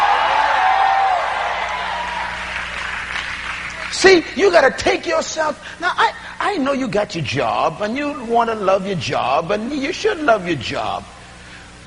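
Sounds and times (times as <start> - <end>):
scattered whoops: 0.0 - 2.9
large crowd screaming and cheering: 0.0 - 3.9
speech: 4.0 - 11.2.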